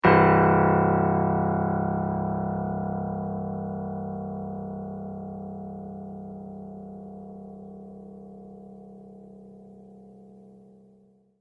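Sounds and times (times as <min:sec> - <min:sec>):
loud piano note: 0:00.0 - 0:09.0.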